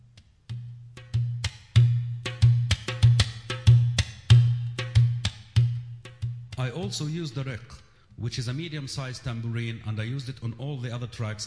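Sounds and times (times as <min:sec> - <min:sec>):
dohola bass tabla drum playing: 0:00.0 - 0:07.5
speech: 0:06.6 - 0:11.4.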